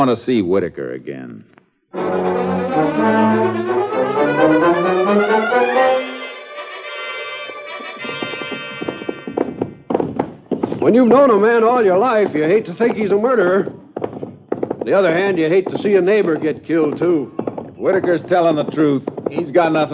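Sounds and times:
speech: 0:00.0 - 0:03.7, 0:10.8 - 0:13.8, 0:14.9 - 0:19.9
loud brassy musical chord: 0:01.9 - 0:09.3
horse hooves clip-clopping: 0:06.5 - 0:19.9.

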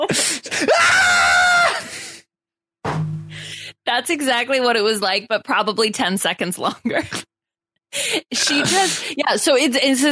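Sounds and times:
speech: 0:00.0 - 0:00.9, 0:04.0 - 0:07.3, 0:07.9 - 0:10.0
person imitating a woman screaming at the top of her lungs: 0:00.6 - 0:01.9.

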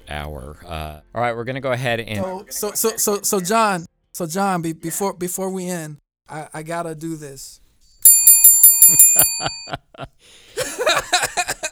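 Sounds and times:
speech: 0:00.1 - 0:07.6, 0:09.2 - 0:10.5
bell ringing: 0:08.0 - 0:09.8
laughter: 0:08.9 - 0:11.6.

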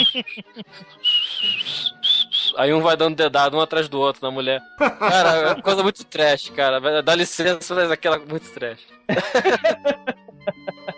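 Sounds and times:
laughter: 0:00.0 - 0:01.0, 0:04.8 - 0:05.9, 0:09.1 - 0:10.9
person whistling a short bouncy march tune: 0:00.0 - 0:02.8
speech: 0:00.1 - 0:10.9.

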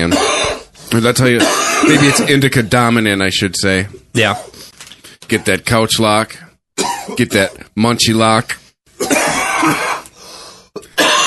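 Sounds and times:
speech: 0:00.0 - 0:00.3, 0:00.9 - 0:04.7, 0:05.3 - 0:08.6, 0:09.6 - 0:09.9
men coughing harshly after smoking indica cannabis: 0:00.0 - 0:00.7, 0:01.4 - 0:02.4, 0:06.8 - 0:07.6, 0:09.0 - 0:10.1, 0:10.7 - 0:11.2.

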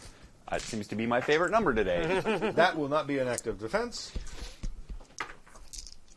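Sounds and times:
speech: 0:00.5 - 0:04.5
laughter: 0:01.8 - 0:02.9
dice clattering across a hard tabletop: 0:04.2 - 0:06.1.

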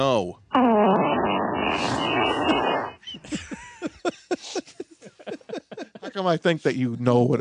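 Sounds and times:
speech: 0:00.0 - 0:00.4, 0:06.2 - 0:07.3
loud raspy buzzy fart audio clip: 0:00.5 - 0:03.0
laughter: 0:02.2 - 0:06.4.

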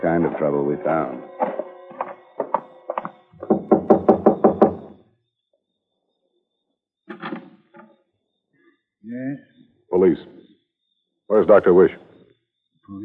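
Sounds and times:
speech: 0:00.0 - 0:01.4, 0:11.5 - 0:12.0
loud knocking on a door: 0:01.4 - 0:05.0.

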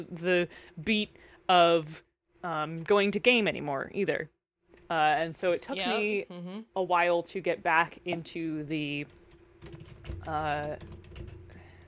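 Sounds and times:
speech: 0:00.0 - 0:11.3
soft typing on a computer keyboard: 0:09.3 - 0:11.8.

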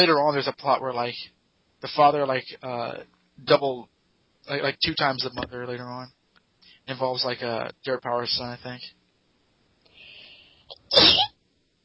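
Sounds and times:
speech: 0:00.0 - 0:06.2, 0:06.9 - 0:09.0, 0:10.9 - 0:11.3
hissing intake of breath: 0:09.9 - 0:10.8
sneeze: 0:10.7 - 0:11.4.

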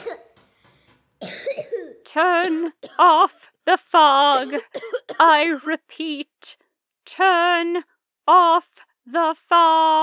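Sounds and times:
loud harsh coughing fit: 0:00.0 - 0:03.4, 0:04.4 - 0:05.7
speech: 0:02.2 - 0:10.0.

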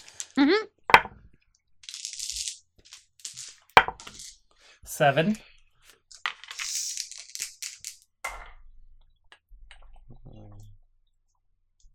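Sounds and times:
speech: 0:00.4 - 0:00.8, 0:05.0 - 0:05.5
fancy dice clattering on a table: 0:00.9 - 0:01.1, 0:01.8 - 0:04.4, 0:06.1 - 0:08.0.

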